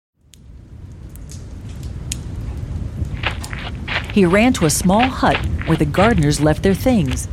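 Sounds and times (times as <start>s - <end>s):
steady heavy rain pouring: 1.3s - 7.3s
low rumbling undertone: 1.5s - 7.3s
speech: 4.2s - 7.3s.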